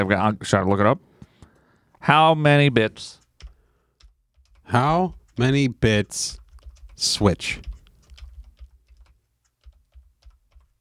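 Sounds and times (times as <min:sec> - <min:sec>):
speech: 0:00.0 - 0:01.1, 0:02.0 - 0:03.2, 0:04.7 - 0:06.4, 0:07.0 - 0:07.7
typing on a computer keyboard: 0:01.2 - 0:02.0, 0:03.2 - 0:10.7.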